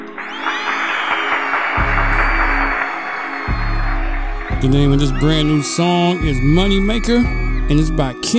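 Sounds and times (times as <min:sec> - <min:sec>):
crowd applauding: 0:00.0 - 0:08.3
speech: 0:04.6 - 0:08.3.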